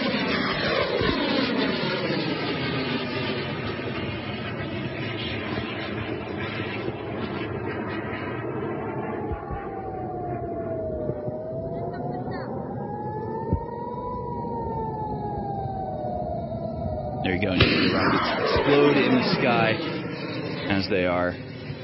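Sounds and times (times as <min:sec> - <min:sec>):
continuous roaring rumble of rocket fire: 0:00.0 - 0:21.8
siren wailing up and down: 0:00.0 - 0:21.8
speech: 0:17.4 - 0:20.0, 0:20.7 - 0:21.4
sharp bangs of air-defense interceptions: 0:17.4 - 0:21.8.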